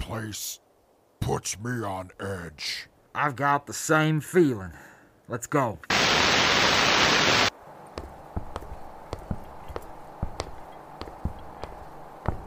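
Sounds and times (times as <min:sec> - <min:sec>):
faint wind: 0:00.0 - 0:12.4
speech: 0:00.1 - 0:00.6, 0:01.3 - 0:07.5
crisp footsteps through ruins: 0:08.0 - 0:12.4.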